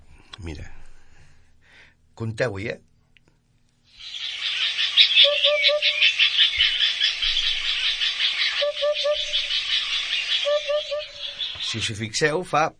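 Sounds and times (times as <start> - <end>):
speech: 0.4 - 0.8, 2.2 - 2.9, 11.7 - 12.7
hoopoe giving soft hollow three-note call: 4.0 - 12.0
loud continuous chorus of insects or frogs: 4.0 - 12.0.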